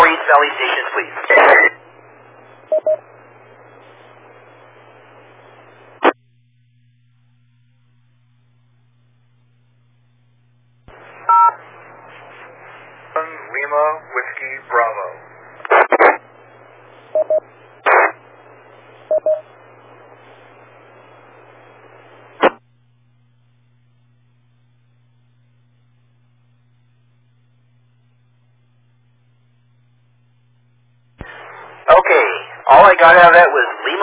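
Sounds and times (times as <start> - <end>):
radio channel static: 0.0 - 6.2, 10.9 - 22.6, 31.2 - 34.0
steady low hum on a noisy radio channel: 0.2 - 34.0
speech: 0.4 - 1.8, 13.7 - 15.3, 17.2 - 17.6, 19.2 - 19.5, 32.9 - 33.8
DTMF keypad tones from a radio with WIRES mode: 2.7 - 3.0, 11.3 - 11.6, 17.2 - 17.4, 19.1 - 19.4.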